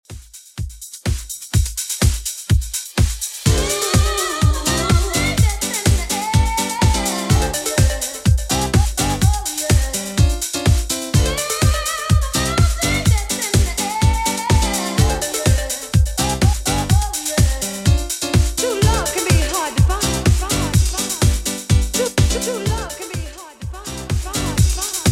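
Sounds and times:
90s drum beat: 0.0 - 25.0.

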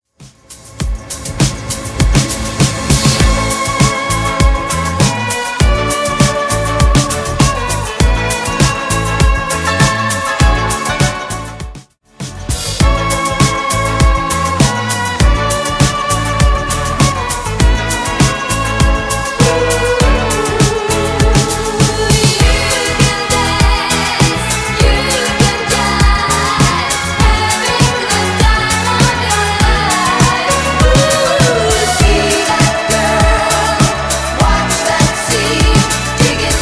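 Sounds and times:
drum beat: 0.2 - 36.6.

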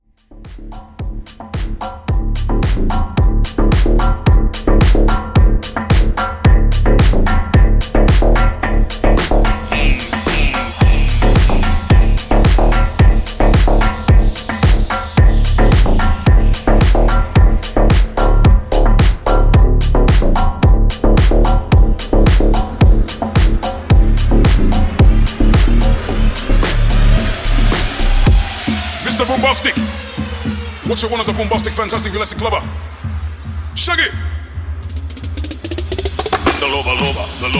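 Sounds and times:
trap remix beat at 110 BPM: 0.1 - 37.5.

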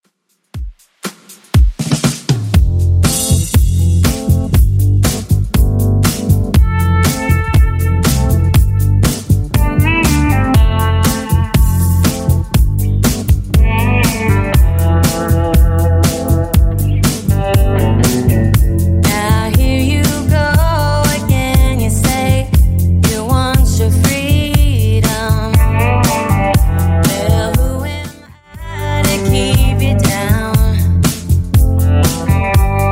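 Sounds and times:
DJ friendly music loop: 0.3 - 32.8.

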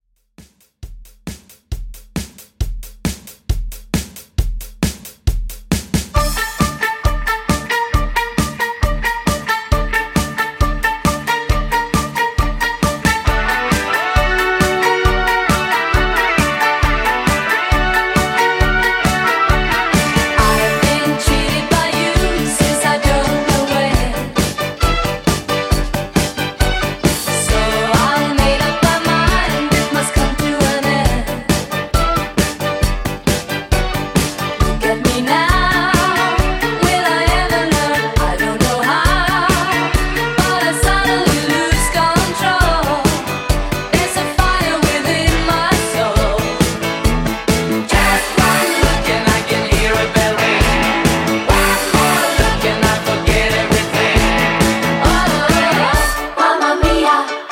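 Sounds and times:
seventies pop drum beat: 0.2 - 57.0.

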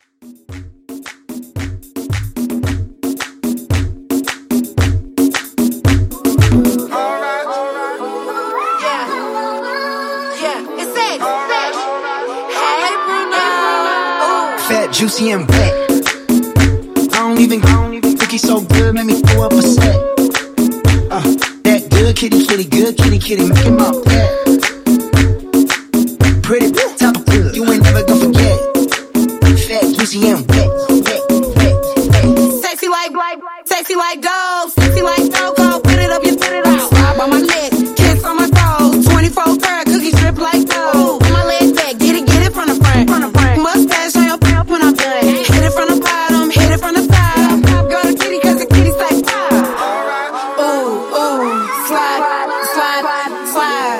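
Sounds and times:
pop reggaeton music: 0.0 - 53.9.

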